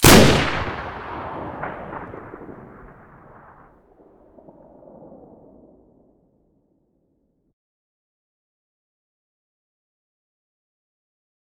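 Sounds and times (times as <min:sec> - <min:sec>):
automatic shotgun firing: 0:00.0 - 0:03.6.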